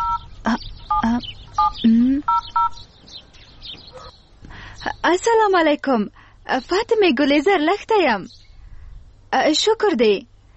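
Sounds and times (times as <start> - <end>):
telephone keypad beeps in short two-tone bursts: 0.0 - 0.3, 0.9 - 2.8
speech: 1.2 - 2.7, 5.0 - 8.4, 9.3 - 10.3.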